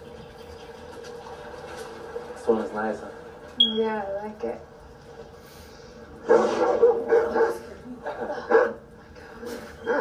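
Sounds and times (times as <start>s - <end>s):
speech: 2.5s - 4.7s
two dogs barking outside: 6.2s - 8.9s, 9.8s - 10.0s.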